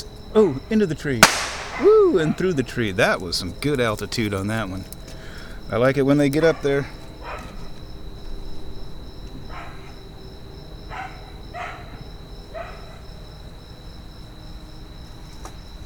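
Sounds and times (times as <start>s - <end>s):
speech: 0.0s - 5.0s, 5.7s - 7.0s
crickets chirring: 0.0s - 15.8s
dog barking: 6.4s - 7.7s, 9.5s - 10.0s, 10.9s - 13.1s.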